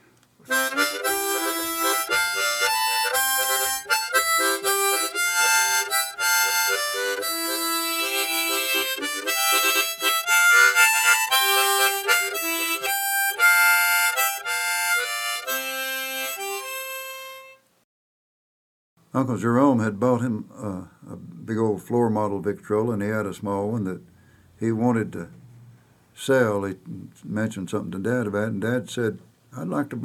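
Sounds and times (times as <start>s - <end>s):
C harmonica playing a lively tune with tongued notes: 0.5s - 17.6s
speech: 19.2s - 25.4s, 26.2s - 30.0s.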